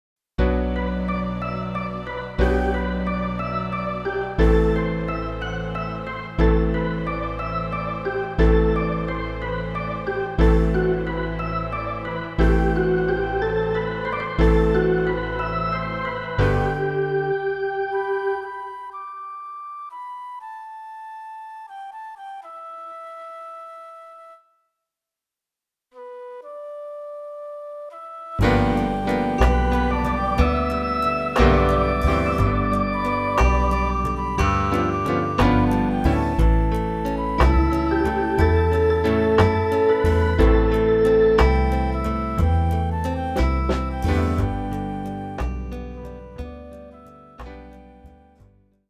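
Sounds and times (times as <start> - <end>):
flute music in G major: 0.4 - 24.7, 25.9 - 48.6.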